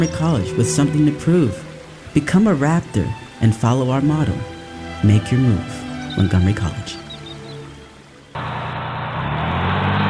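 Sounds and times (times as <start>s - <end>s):
speech: 0.0s - 7.0s
bus engine pulling away: 5.9s - 10.0s.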